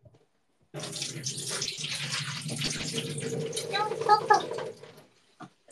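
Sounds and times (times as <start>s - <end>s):
running splashing water while washing rice: 0.7s - 5.1s.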